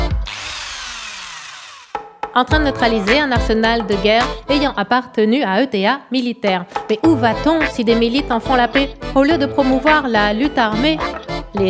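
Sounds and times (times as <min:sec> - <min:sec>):
electric drill whirring: 0:00.0 - 0:02.0
speech: 0:02.4 - 0:11.6.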